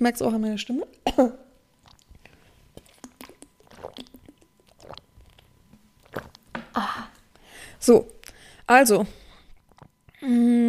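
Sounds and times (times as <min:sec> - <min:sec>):
speech: 0:00.0 - 0:01.4, 0:07.8 - 0:09.2, 0:10.2 - 0:10.6
quiet wet mouth sounds: 0:01.7 - 0:06.9, 0:09.5 - 0:10.2
person drinking and swallowing: 0:01.8 - 0:07.4, 0:09.5 - 0:10.2.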